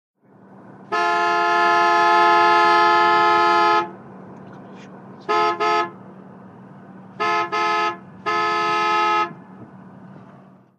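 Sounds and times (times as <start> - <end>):
1970 Buick horn: 0.8 - 4.0, 5.2 - 6.0, 7.1 - 9.5.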